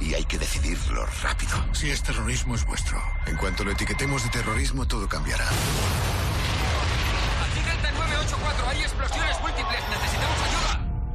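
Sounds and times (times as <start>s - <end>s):
speech: 0.2s - 6.3s, 7.9s - 10.8s
deep booms: 5.5s - 9.1s
explosions rumbling: 5.5s - 10.4s.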